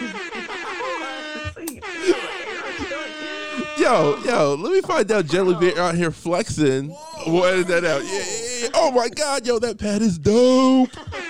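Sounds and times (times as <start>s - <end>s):
air horn sound effect blaring: 0.0s - 6.1s
laughter: 0.0s - 11.2s
speech: 3.8s - 11.1s.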